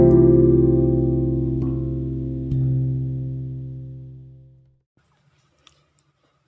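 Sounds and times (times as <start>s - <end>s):
instrumental music of sustained electronic tones: 0.0s - 3.7s.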